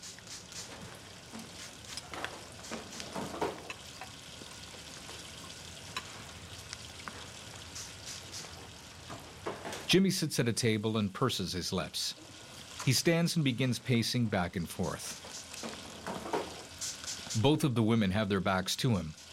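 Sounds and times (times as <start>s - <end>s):
short hissing spritzes from a spray bottle misting water: 0.0s - 3.7s, 7.6s - 8.6s, 14.8s - 17.5s
steady running water from a sink: 0.0s - 19.3s
speech: 9.9s - 12.2s, 12.8s - 15.2s, 17.4s - 19.2s.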